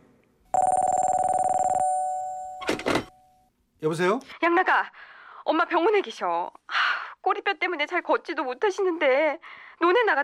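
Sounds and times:
telephone bell ringing: 0.5 - 3.5
speech: 3.8 - 10.2.

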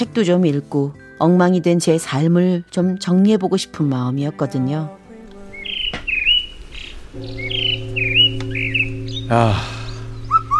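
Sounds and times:
speech: 0.0 - 5.0, 7.1 - 7.8, 9.3 - 9.8
birds chirping and whistling at a Buddhist temple in autumn: 5.5 - 10.5.

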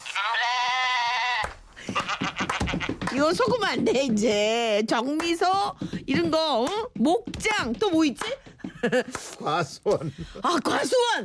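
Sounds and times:
young black goat bleating, tied to a post: 0.0 - 3.0
speech: 1.9 - 11.2
laughter: 8.6 - 10.4.

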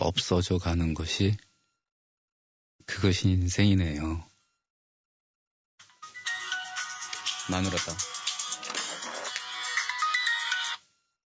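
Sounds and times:
speech: 0.1 - 1.5, 2.9 - 4.3, 7.5 - 8.1
mobile phone ringtone playing a bright electronic melody: 5.9 - 10.8.

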